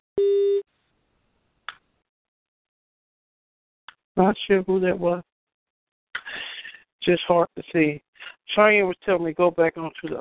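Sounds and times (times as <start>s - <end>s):
short electronic phone tone: 0.2s - 0.6s
speech: 4.2s - 5.3s, 7.1s - 10.1s.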